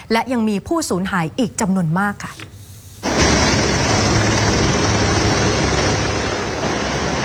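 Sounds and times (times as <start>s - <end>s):
speech: 0.1s - 2.6s
helicopter ferrying rescue teams in Rasuwa district Nepal: 3.0s - 7.2s.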